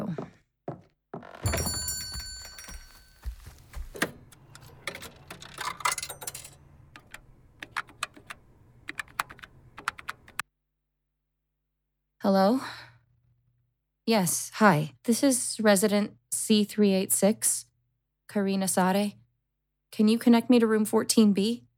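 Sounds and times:
payphone clunk: 0:01.4 - 0:08.4
sharp uneven mechanical clicks of payphone buttons: 0:01.5 - 0:10.2
quarter dropping into a payphone: 0:04.5 - 0:07.9
speech: 0:12.3 - 0:12.8, 0:14.1 - 0:17.7, 0:18.3 - 0:19.2, 0:20.0 - 0:21.6.

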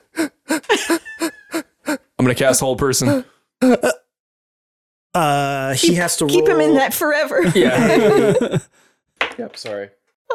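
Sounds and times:
voice imitating labored wheezing breathing with raspy strained gasps: 0:00.0 - 0:02.1
laughter: 0:00.6 - 0:01.6, 0:07.4 - 0:08.7
speech: 0:02.2 - 0:03.9, 0:05.2 - 0:08.8, 0:09.4 - 0:10.0.

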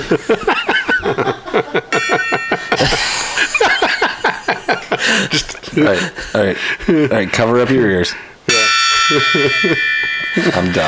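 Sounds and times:
speech: 0:00.0 - 0:01.7, 0:05.8 - 0:08.4, 0:09.1 - 0:10.8
group laughing: 0:00.0 - 0:08.0, 0:09.1 - 0:10.8
metallic gong being struck: 0:08.5 - 0:10.8.

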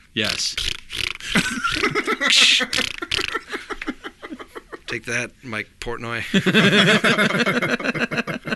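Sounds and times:
speech: 0:00.2 - 0:03.4, 0:04.9 - 0:08.0
rapid-fire comedic fart sound effects: 0:00.4 - 0:03.5
laughter: 0:01.3 - 0:04.9, 0:06.3 - 0:08.5.

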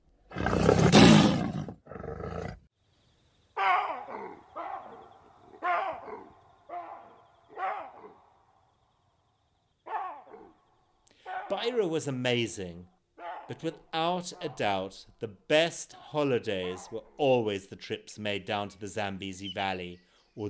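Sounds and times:
lion roaring: 0:00.3 - 0:02.7, 0:03.6 - 0:08.6, 0:09.9 - 0:10.6, 0:11.2 - 0:11.8, 0:13.2 - 0:14.9, 0:15.9 - 0:17.2
speech: 0:11.5 - 0:20.4.

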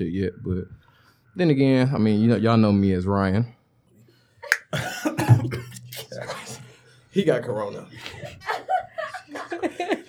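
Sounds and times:
speech: 0:00.0 - 0:00.8, 0:01.4 - 0:03.6, 0:04.7 - 0:06.4, 0:07.2 - 0:08.7
person coughing: 0:04.5 - 0:06.6
throat clearing: 0:04.5 - 0:06.7
laughter: 0:04.5 - 0:10.0.

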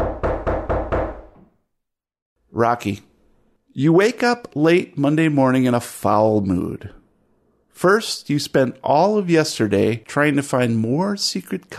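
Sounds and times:
firm knocking on a door: 0:00.0 - 0:01.5
speech: 0:02.6 - 0:03.1, 0:03.8 - 0:07.0, 0:07.8 - 0:11.7.

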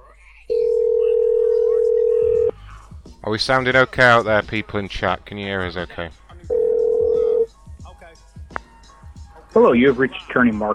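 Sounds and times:
telephone dial tone: 0:00.6 - 0:02.5, 0:06.5 - 0:07.4
speech: 0:03.3 - 0:06.2, 0:09.5 - 0:10.7.

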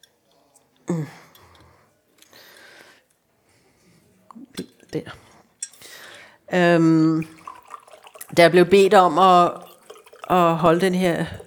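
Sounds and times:
speech: 0:00.9 - 0:01.2, 0:04.9 - 0:05.2, 0:06.5 - 0:07.4, 0:08.4 - 0:09.6, 0:10.3 - 0:11.4
short loud hummed voice: 0:00.9 - 0:01.3
water poured into a small drinking glass: 0:07.2 - 0:11.4.

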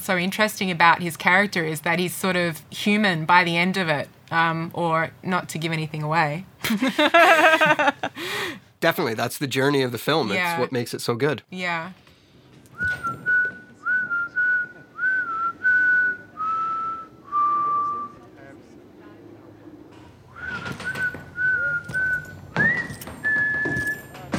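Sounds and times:
speech: 0:00.0 - 0:12.0
laughter: 0:06.6 - 0:08.3
man whistling a slow clear melody: 0:12.7 - 0:18.2, 0:20.3 - 0:24.2.

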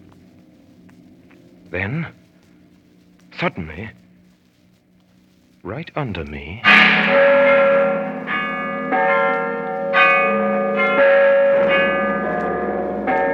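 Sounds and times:
church bells ringing in a peal: 0:00.8 - 0:02.3, 0:03.3 - 0:04.0, 0:05.8 - 0:13.3
speech: 0:01.7 - 0:02.2, 0:03.4 - 0:04.0, 0:05.6 - 0:07.9.

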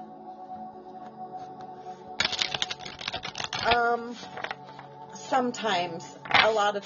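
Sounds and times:
deck of cards shuffling: 0:02.2 - 0:04.9, 0:06.2 - 0:06.8
speech: 0:03.6 - 0:04.5, 0:05.3 - 0:06.8.

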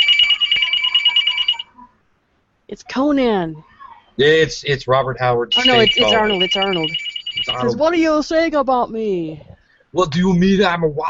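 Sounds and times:
phone ringing with a trilling electronic tone: 0:00.0 - 0:01.8, 0:05.5 - 0:07.9
speech: 0:02.7 - 0:11.0.

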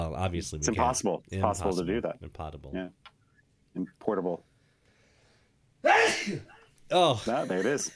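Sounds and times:
speech: 0:00.1 - 0:03.1, 0:03.8 - 0:04.5, 0:05.8 - 0:07.9
loud sneeze: 0:05.8 - 0:06.6.

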